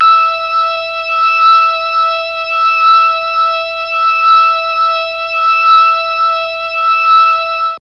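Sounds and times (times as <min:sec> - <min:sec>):
E4 organ note on a Mellotron MKII: 0:00.0 - 0:07.7.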